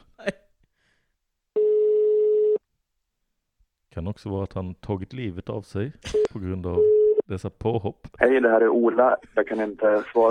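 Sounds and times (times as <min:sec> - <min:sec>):
ringback tone from an outgoing phone call: 0:01.6 - 0:02.6
speech: 0:04.0 - 0:10.3.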